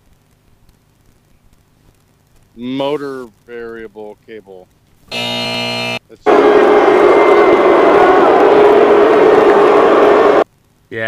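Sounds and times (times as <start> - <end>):
speech: 2.6 - 7.7
crowd cheering and roaring sound effect: 5.1 - 10.4.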